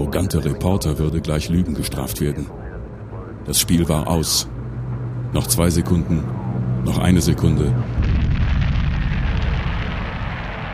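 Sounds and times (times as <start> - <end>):
speech: 0.1 - 2.6, 3.4 - 4.5, 5.3 - 8.0
gigantic explosion of a space shuttle: 7.9 - 10.7.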